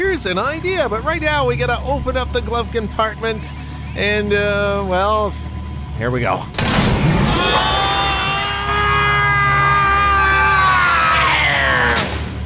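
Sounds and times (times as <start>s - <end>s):
speech: 0.2s - 7.8s
loud sustained yell with strong harmonics: 7.3s - 12.1s.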